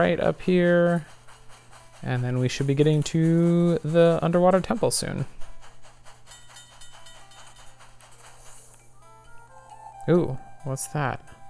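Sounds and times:
speech: 0.0s - 1.2s, 2.0s - 5.4s, 10.1s - 11.4s
video game train rumbling along tracks with engine drone and rhythmic chugs: 0.0s - 8.9s
hissing steam of a video game train: 0.0s - 9.0s.

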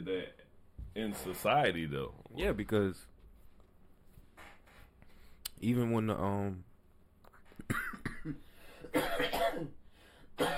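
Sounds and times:
speech: 0.0s - 0.4s, 1.0s - 3.1s, 5.6s - 6.7s, 7.7s - 9.8s, 10.4s - 10.5s
man in a coughing fit: 7.6s - 9.8s, 10.4s - 10.5s.

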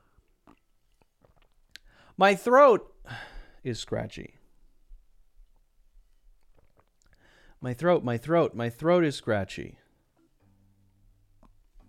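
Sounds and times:
person sipping a drink: 0.1s - 1.9s, 6.4s - 7.3s
soft mouth clicks: 0.2s - 2.0s, 6.4s - 7.3s
speech: 2.2s - 4.4s, 7.6s - 9.8s.

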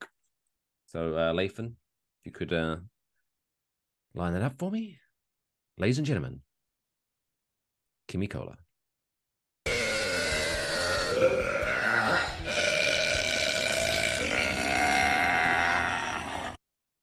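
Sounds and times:
speech: 0.9s - 2.9s, 4.2s - 5.0s, 5.8s - 6.5s, 8.1s - 8.6s, 11.2s - 12.3s
long loud gravelly bleating burp: 9.7s - 16.6s.

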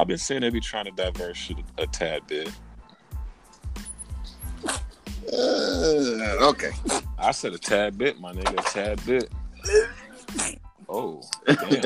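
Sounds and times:
speech: 0.0s - 2.7s, 5.3s - 11.8s
sneeze: 4.6s - 4.8s, 6.8s - 7.1s, 9.7s - 10.6s
laughter: 11.4s - 11.8s.

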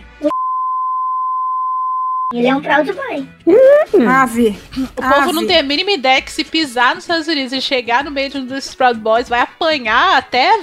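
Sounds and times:
censor bleep pure tone: 0.2s - 2.4s
speech: 2.3s - 10.6s.

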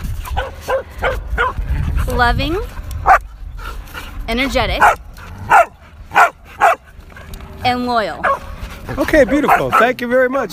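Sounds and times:
dog barking: 0.4s - 1.6s, 3.0s - 3.2s, 4.8s - 7.4s, 8.2s - 8.5s, 9.2s - 10.5s
low outdoor rumble: 1.0s - 10.5s
speech: 2.2s - 3.2s, 4.3s - 5.0s, 7.6s - 8.3s, 8.9s - 10.5s.

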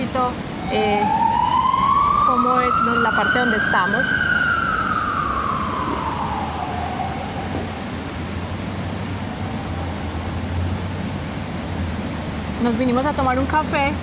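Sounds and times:
street traffic noise: 0.0s - 14.0s
speech: 0.2s - 1.3s, 2.3s - 4.4s, 12.6s - 14.0s
ambulance siren wailing as it moves past: 0.6s - 8.1s.

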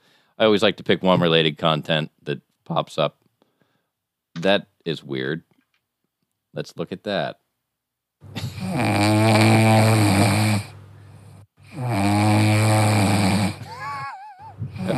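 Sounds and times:
speech: 0.4s - 3.2s, 4.4s - 5.5s, 6.6s - 7.4s
cat snoring while asleep: 8.6s - 10.7s, 11.6s - 13.7s.

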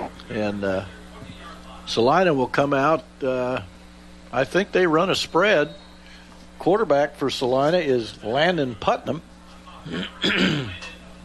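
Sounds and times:
speech: 0.3s - 1.0s, 1.9s - 5.8s, 6.6s - 10.8s
raspy throat clearing: 9.8s - 11.0s.

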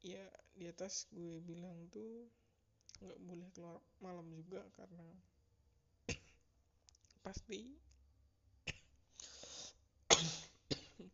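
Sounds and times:
speech: 0.1s - 2.4s, 3.0s - 5.3s, 7.2s - 7.9s
dry harsh coughs from one person: 10.1s - 11.1s.

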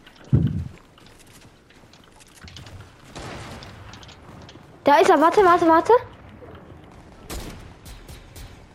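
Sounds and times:
steady noise: 0.0s - 8.7s
gunfire in a video game: 2.7s - 8.7s
speech: 4.9s - 6.1s.

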